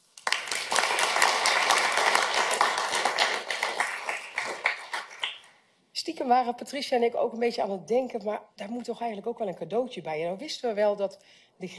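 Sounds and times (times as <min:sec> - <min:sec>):
crowd applauding: 0:00.0 - 0:05.5
speech: 0:06.1 - 0:11.7.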